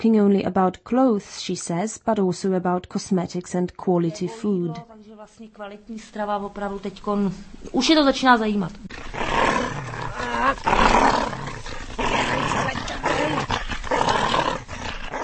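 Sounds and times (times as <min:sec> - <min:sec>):
speech: 0:00.0 - 0:09.4, 0:10.4 - 0:11.4
dog growling playfully during a game: 0:08.8 - 0:15.2.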